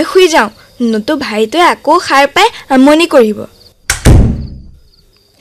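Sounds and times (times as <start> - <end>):
speech: 0.0 - 3.6
door being shut: 3.9 - 4.8.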